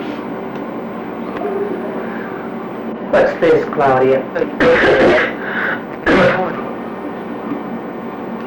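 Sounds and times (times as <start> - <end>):
faint hum: 0.0 - 8.4
speech: 3.1 - 5.3
person coughing: 4.6 - 6.7.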